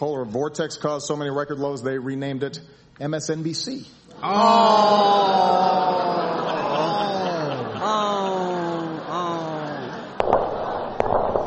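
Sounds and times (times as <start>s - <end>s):
speech: 0.0s - 6.3s
laughter: 4.8s - 10.2s
gunshots: 10.2s - 11.4s.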